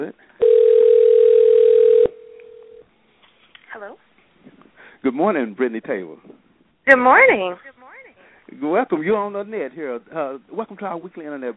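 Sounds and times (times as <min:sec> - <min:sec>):
speech: 0:00.0 - 0:00.3, 0:05.1 - 0:06.3, 0:06.9 - 0:07.7, 0:08.6 - 0:11.5
telephone dial tone as a call is placed: 0:00.4 - 0:02.8.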